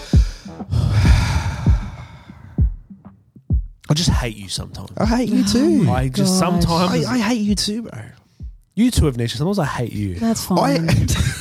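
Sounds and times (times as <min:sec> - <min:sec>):
deep breath drawn in: 0:00.0 - 0:02.9
speech: 0:03.9 - 0:08.2, 0:08.8 - 0:11.3.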